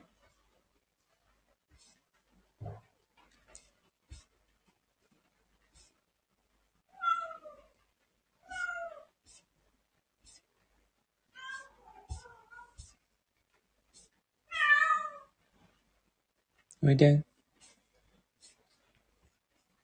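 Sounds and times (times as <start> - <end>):
cat meowing: 6.9 - 7.7, 8.4 - 9.1, 11.3 - 12.9, 14.5 - 15.3
speech: 16.8 - 17.3.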